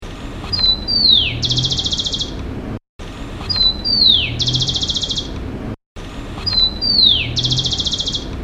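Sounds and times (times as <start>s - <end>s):
sparrow: 0.4s - 2.4s, 3.4s - 5.4s, 6.4s - 8.3s.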